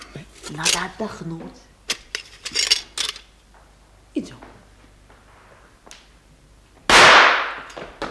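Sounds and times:
speech: 0:00.6 - 0:01.7
gunshot sound effect in a drama: 0:06.9 - 0:07.7.

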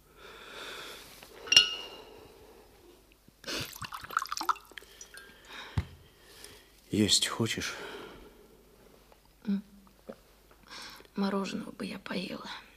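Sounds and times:
glass clinks: 0:01.5 - 0:02.0
splashy handling sounds of water and glass: 0:03.6 - 0:05.2
water pouring into a glass: 0:03.6 - 0:05.4
speech: 0:06.9 - 0:08.0, 0:11.2 - 0:12.7.

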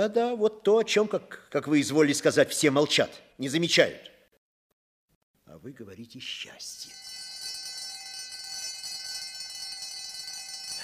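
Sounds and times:
speech: 0:00.0 - 0:04.2, 0:05.5 - 0:07.0
school bell ringing to end the break: 0:06.9 - 0:10.8.

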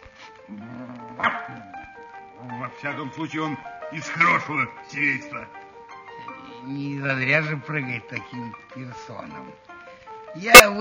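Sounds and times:
low sustained hum of music: 0:00.0 - 0:10.7
speech: 0:00.5 - 0:00.8, 0:02.8 - 0:05.6, 0:06.6 - 0:09.7, 0:10.3 - 0:10.7
dog barking: 0:01.1 - 0:01.8.

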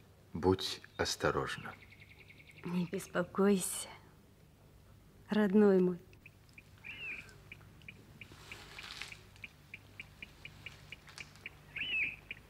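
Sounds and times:
speech: 0:00.4 - 0:01.9, 0:02.6 - 0:04.0, 0:05.3 - 0:06.1
nightingale singing: 0:00.7 - 0:03.2, 0:06.1 - 0:12.4.

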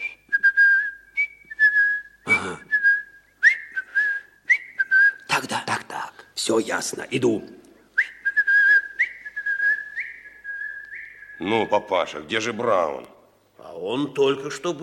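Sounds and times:
person whistling a melody: 0:00.0 - 0:05.3, 0:08.0 - 0:11.7
speech: 0:06.4 - 0:07.6, 0:11.4 - 0:14.8.

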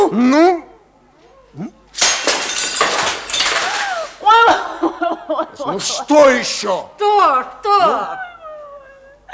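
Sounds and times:
speech: 0:00.1 - 0:00.6, 0:05.7 - 0:08.2
glass shards clinking and scattering: 0:01.9 - 0:04.3
window glass shattering: 0:01.9 - 0:04.4.

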